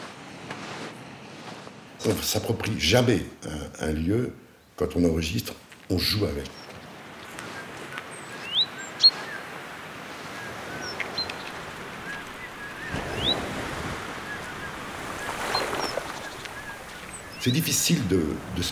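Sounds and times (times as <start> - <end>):
ocean surf with waves swelling and breaking: 0.0 - 2.4, 6.2 - 18.7
speech: 2.0 - 6.6, 17.4 - 18.7
short bird chirps: 6.4 - 9.6, 10.2 - 13.5, 14.1 - 17.8.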